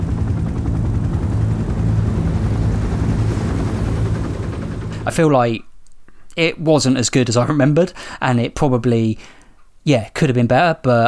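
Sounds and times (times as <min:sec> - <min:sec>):
helicopter rotor thump and engine drone: 0:00.0 - 0:05.1
speech: 0:05.1 - 0:05.7, 0:06.4 - 0:11.0.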